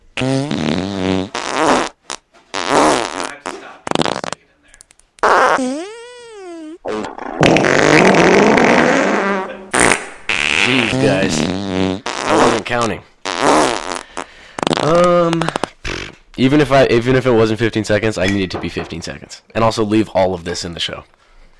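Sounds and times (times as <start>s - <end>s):
loud buzzy fart noises: 0.2s - 4.5s, 5.2s - 16.3s
speech: 16.4s - 21.2s.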